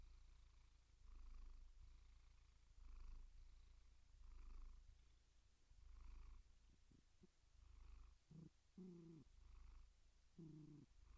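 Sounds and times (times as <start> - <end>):
cat purring: 0.0 - 11.1.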